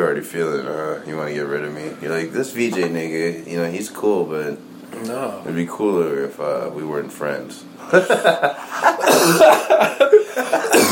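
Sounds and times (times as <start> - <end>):
speech: 0.0 - 10.9
laughter: 7.8 - 10.9
person coughing hard in harsh ragged hacks: 9.0 - 9.9, 10.5 - 10.9.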